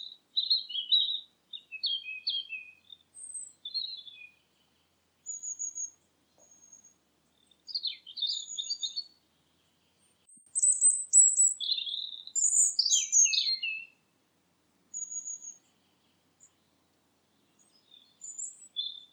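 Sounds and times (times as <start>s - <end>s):
bird calls with high thin whistles and short chirps: 0.0s - 4.4s, 5.2s - 6.9s, 7.7s - 9.1s, 10.3s - 14.0s, 14.9s - 15.6s, 17.8s - 19.1s.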